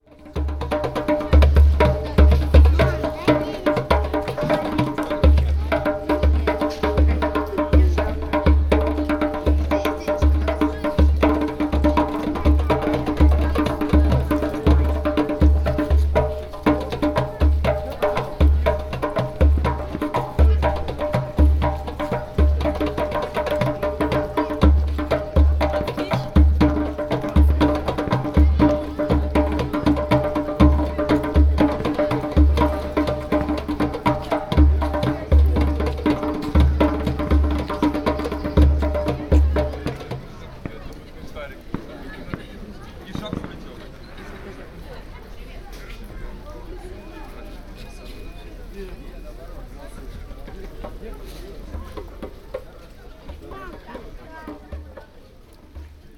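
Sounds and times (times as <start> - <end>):
drummer playing drums: 0.2 - 40.7.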